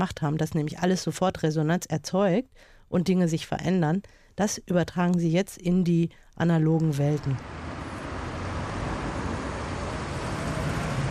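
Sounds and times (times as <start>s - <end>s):
speech: 0.0s - 7.7s
steady rumble of road traffic in a traffic jam: 7.2s - 11.0s
idling car engine drone in a traffic jam: 7.4s - 11.0s.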